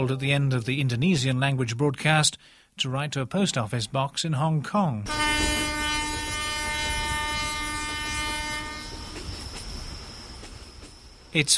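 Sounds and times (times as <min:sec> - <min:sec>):
speech: 0:00.0 - 0:05.6, 0:11.3 - 0:11.5
passenger train horn: 0:05.1 - 0:09.4
passenger train from Bandung to Yogyakarta rumbling along the rails: 0:05.1 - 0:11.5.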